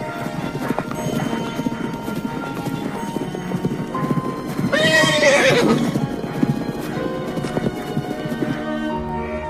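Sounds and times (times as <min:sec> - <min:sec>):
horses galloping: 0:00.0 - 0:08.9
horse whinnying: 0:04.5 - 0:07.8.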